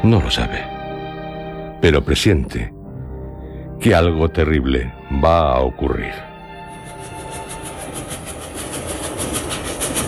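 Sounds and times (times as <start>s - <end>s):
speech: 0.0s - 0.7s, 1.8s - 2.8s, 3.8s - 6.3s
train running fast and jolting over a rough track: 6.7s - 10.0s
rapid regular train wheel clatter: 6.8s - 10.0s.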